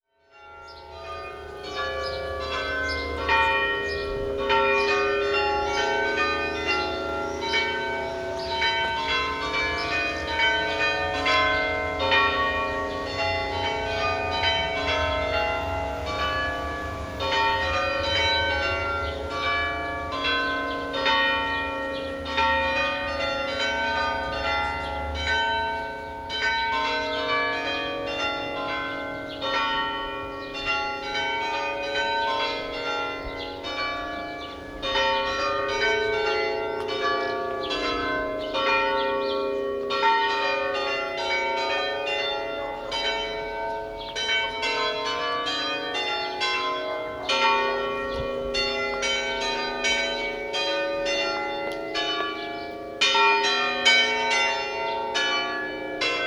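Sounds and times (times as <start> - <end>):
church bells ringing in Dent in UK: 0.0 - 56.2.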